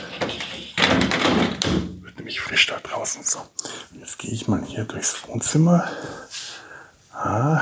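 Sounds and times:
door pushed shut with a dull thud: 0.2s - 2.0s
speech: 4.3s - 6.2s, 7.2s - 7.6s.

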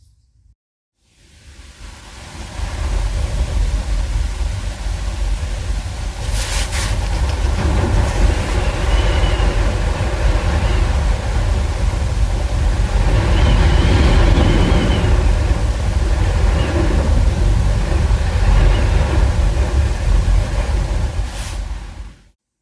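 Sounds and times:
strong gusting wind recorded from indoors: 1.5s - 22.3s.

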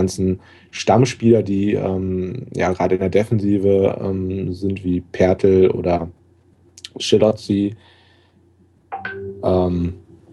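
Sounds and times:
speech: 0.0s - 6.2s, 7.0s - 7.9s, 9.1s - 10.0s
phone notification chime: 8.9s - 9.6s.

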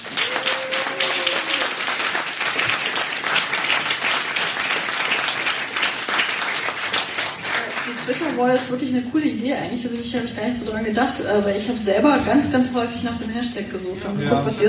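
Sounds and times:
audience applause for the organizing team: 0.0s - 8.8s
speech: 8.3s - 14.6s.

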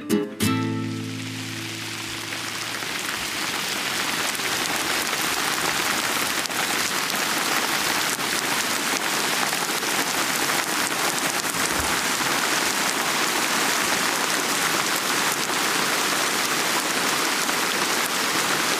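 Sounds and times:
steady rain pattering on surfaces: 0.5s - 18.7s.

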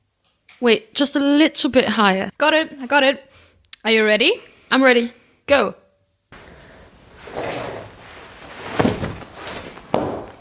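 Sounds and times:
speech: 0.6s - 5.8s
scuffle of movement and scraping shuffle: 6.4s - 10.3s
heavy thump: 8.4s - 10.3s.

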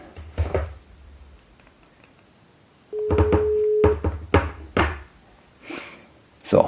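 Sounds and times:
steady telephone tone: 2.9s - 4.0s.

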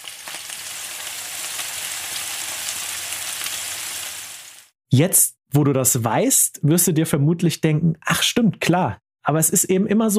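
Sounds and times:
potato slices and sausages sizzling in a hot pan of fat: 0.0s - 4.8s
speech: 4.9s - 10.1s.

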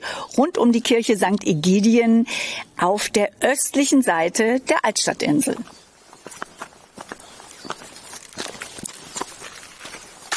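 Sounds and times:
faint outdoor ambience: 0.0s - 10.3s
speech: 0.3s - 5.8s
footsteps walking along a street on hard pavement: 5.6s - 10.3s.

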